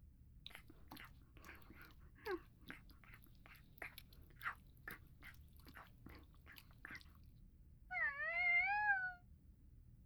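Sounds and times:
cat crunching its breakfast: 0:00.5 - 0:07.2
cat meowing: 0:07.9 - 0:09.2.

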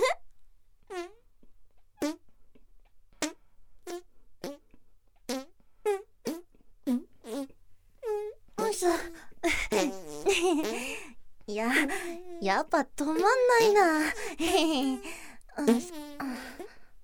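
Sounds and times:
short loud buzzy farts: 0:00.9 - 0:01.2, 0:02.0 - 0:02.2, 0:03.2 - 0:07.6, 0:15.6 - 0:16.3
speech: 0:08.8 - 0:16.0.

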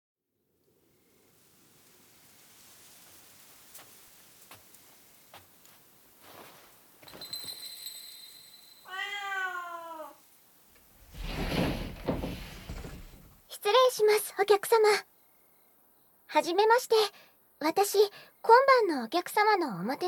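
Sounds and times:
rushing rain-like hiss: 0:00.8 - 0:13.5
cat meowing at a Japanese inn: 0:08.9 - 0:10.3
sliding door rumble: 0:10.8 - 0:13.4
soft knocks: 0:10.8 - 0:13.4
speech: 0:13.6 - 0:15.1, 0:16.3 - 0:20.0.

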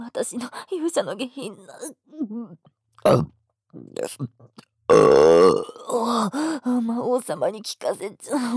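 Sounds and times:
speech: 0:00.1 - 0:08.5
long loud burp: 0:03.0 - 0:03.3, 0:04.9 - 0:06.0
breathy vocal sounds and gasps: 0:06.0 - 0:06.8.

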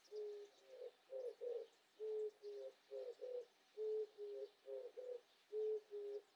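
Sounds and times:
Oriental turtle dove cooing: 0:00.0 - 0:06.3
quiet outdoor noise: 0:00.0 - 0:06.3.

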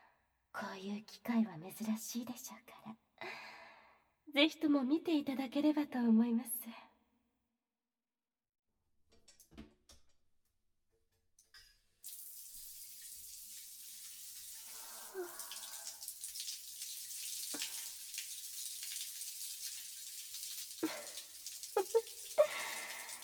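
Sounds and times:
speech: 0:00.6 - 0:03.4, 0:04.3 - 0:06.9
tap water running while hair is washed: 0:12.0 - 0:23.2.

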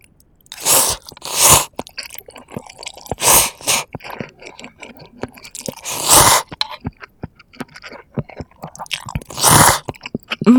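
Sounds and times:
food crunching and chewing: 0:00.0 - 0:10.5.

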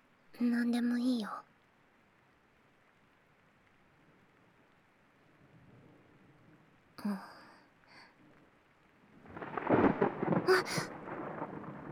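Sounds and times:
heavy rain: 0:00.2 - 0:11.9
speech: 0:00.4 - 0:01.5, 0:07.0 - 0:07.3, 0:10.5 - 0:10.9
thunder rumbling: 0:09.1 - 0:11.9.

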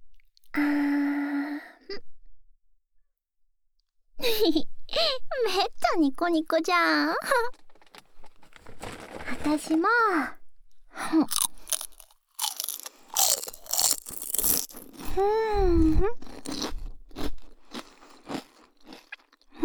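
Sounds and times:
speech: 0:00.6 - 0:00.9, 0:04.4 - 0:07.6, 0:09.4 - 0:10.4, 0:11.0 - 0:11.5, 0:15.2 - 0:16.2
crunchy biting and chewing of a thin flat piece of food: 0:11.3 - 0:15.2, 0:16.1 - 0:19.5.

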